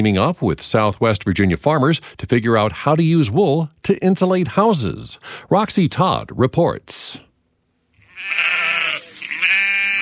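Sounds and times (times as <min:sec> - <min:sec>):
speech: 0:00.0 - 0:07.3
sheep bleating on a farm in Pulaski County Virginia: 0:08.0 - 0:10.0.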